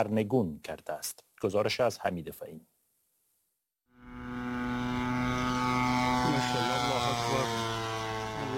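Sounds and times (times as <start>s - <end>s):
speech: 0.0s - 2.7s
drone propeller engine buzzing in flight: 3.9s - 8.5s.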